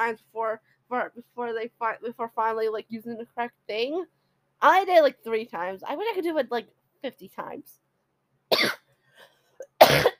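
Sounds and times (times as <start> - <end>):
speech: 0.0 - 7.8, 8.5 - 8.8
person coughing: 8.5 - 8.9, 9.6 - 10.1.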